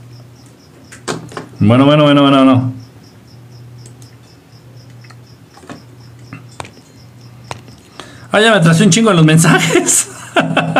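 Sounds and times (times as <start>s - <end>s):
cricket chirping: 0.0s - 10.7s
low electrical hum: 0.0s - 10.7s
speech: 1.6s - 2.8s, 8.4s - 10.7s
faint clicks and taps: 3.8s - 8.2s
laughter: 9.4s - 10.7s.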